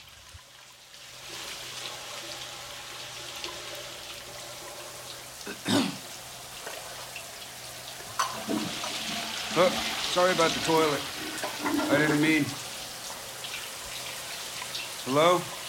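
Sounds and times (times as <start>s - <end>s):
shower water spraying: 0.0s - 15.6s
speech: 5.5s - 6.0s, 9.6s - 12.6s, 15.1s - 15.6s.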